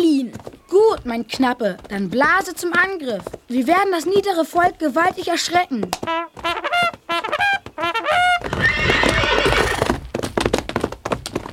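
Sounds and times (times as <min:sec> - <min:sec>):
speech: 0:00.0 - 0:06.7
rapid hoofbeats of a horse bolting at a gallop: 0:00.0 - 0:11.5
horse whinnying in shrill quavering pulses: 0:07.2 - 0:10.0.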